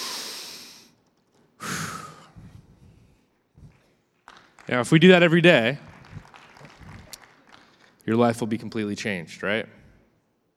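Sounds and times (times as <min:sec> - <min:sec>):
deep breath drawn in and let out: 0:00.0 - 0:01.0, 0:01.6 - 0:04.0, 0:05.8 - 0:07.2
speech: 0:04.7 - 0:05.9, 0:08.1 - 0:09.8.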